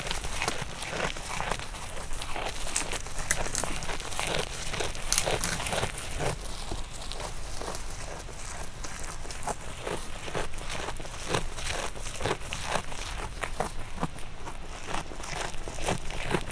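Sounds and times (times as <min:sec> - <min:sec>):
domestic goat eating in a farmyard: 0:00.0 - 0:16.5
branch breaking: 0:02.6 - 0:05.9.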